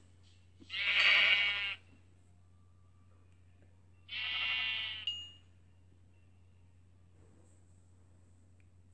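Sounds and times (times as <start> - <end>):
low steady hum: 0.0 - 8.9
video game sheep bleating: 0.7 - 1.9, 4.1 - 5.1.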